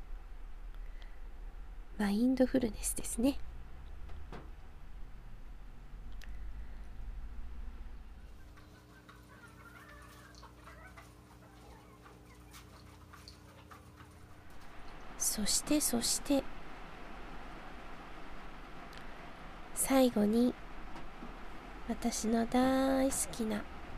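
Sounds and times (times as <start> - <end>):
low rumble: 0.0 - 9.6, 13.8 - 23.9
speech: 2.0 - 3.5, 15.4 - 16.6, 19.9 - 20.6, 21.9 - 23.8
chickens kept at a home clucking while being fed: 8.2 - 15.0.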